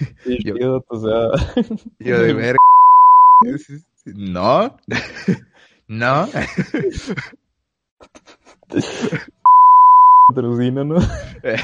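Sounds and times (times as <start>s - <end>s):
laughter: 0.0s - 2.6s, 4.5s - 7.4s, 8.6s - 9.4s, 10.4s - 11.6s
speech: 0.0s - 2.7s, 3.4s - 7.4s, 8.0s - 9.4s, 10.3s - 11.6s
steady pure censorship bleep tone: 2.1s - 3.5s, 9.5s - 10.3s.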